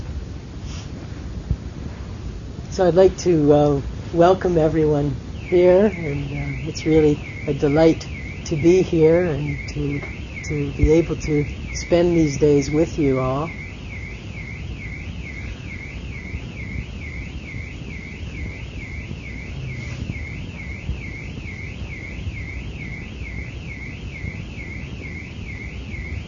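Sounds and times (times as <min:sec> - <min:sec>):
speech: 0:02.8 - 0:13.6
car alarm wailing: 0:03.2 - 0:26.2.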